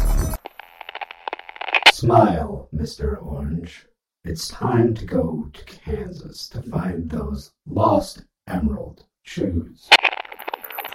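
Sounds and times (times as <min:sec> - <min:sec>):
speaker squelching a burst of white noise: 0:00.0 - 0:01.9
speech: 0:02.0 - 0:10.0.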